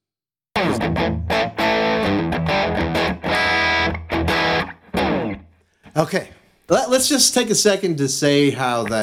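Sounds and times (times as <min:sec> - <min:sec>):
electric guitar chords through an echoplex-style delay: 0:00.6 - 0:05.5
speech: 0:00.8 - 0:01.5, 0:06.0 - 0:09.0.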